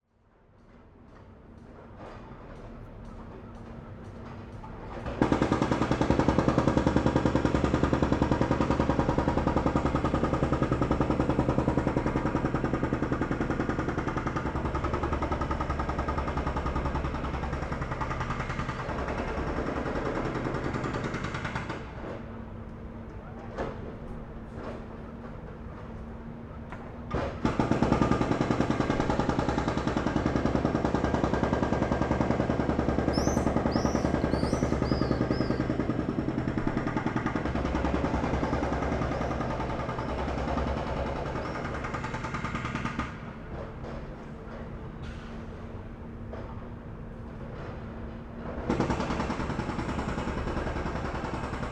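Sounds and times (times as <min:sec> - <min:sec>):
hydraulic jackhammer at a street construction site: 0:04.9 - 0:22.4, 0:27.1 - 0:45.4, 0:48.4 - 0:51.7.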